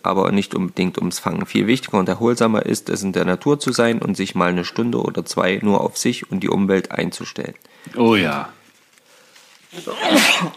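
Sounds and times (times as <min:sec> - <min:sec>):
speech: 0:00.0 - 0:08.6, 0:09.7 - 0:10.5
person sneezing: 0:09.7 - 0:10.5.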